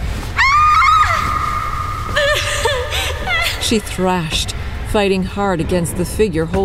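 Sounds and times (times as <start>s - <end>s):
faint low rumble: 0.0s - 6.6s
woman screaming in terror: 0.4s - 3.9s
speech: 3.7s - 6.6s.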